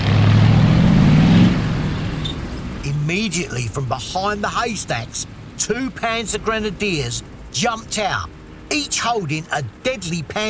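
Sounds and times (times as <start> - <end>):
heavy tank engine revving climbing a stream bank: 0.0 - 10.4
speech: 3.3 - 10.4.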